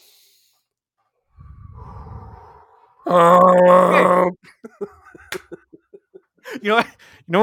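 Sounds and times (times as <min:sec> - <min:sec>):
person taking a big breathy inhale: 0:01.4 - 0:03.1
loud sustained voiced groan-like exhale: 0:01.4 - 0:03.4
laughter: 0:04.4 - 0:07.0.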